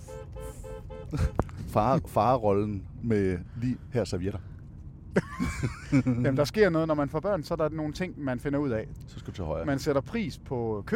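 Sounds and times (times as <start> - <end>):
car horn honking: 0.0 - 1.7
speech: 1.1 - 4.5, 5.2 - 10.9
laughter: 5.2 - 6.4.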